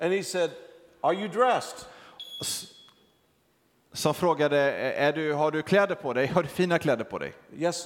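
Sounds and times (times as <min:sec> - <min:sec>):
speech: 0:00.0 - 0:02.7, 0:03.9 - 0:07.8
high-pitched electronic beep: 0:02.2 - 0:03.0.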